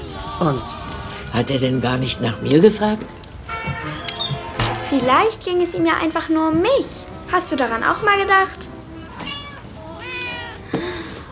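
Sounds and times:
speech: 0:00.4 - 0:03.2, 0:04.9 - 0:08.6
cat meowing inside a box: 0:03.5 - 0:05.0, 0:09.0 - 0:10.7.

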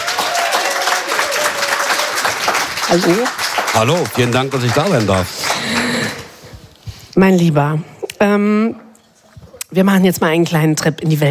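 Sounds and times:
audience applauding warmly at a live event: 0:00.0 - 0:06.4
speech: 0:02.9 - 0:05.5, 0:07.2 - 0:08.8, 0:09.7 - 0:11.2.

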